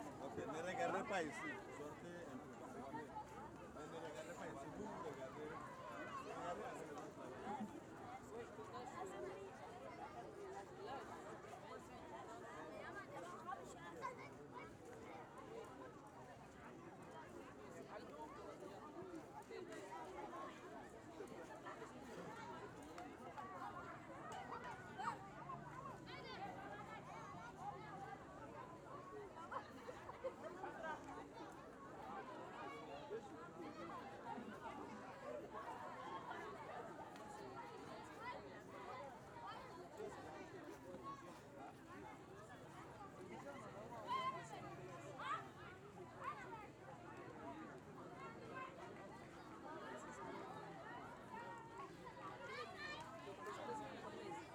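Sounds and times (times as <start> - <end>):
busy African village school ambience: 0.0 - 54.5.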